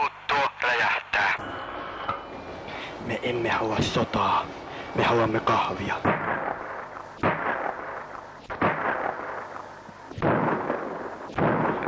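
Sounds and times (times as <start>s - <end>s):
steady noise: 0.0s - 11.8s
speech: 3.1s - 6.6s
heavy gunshots with rumbling tails: 6.0s - 11.8s.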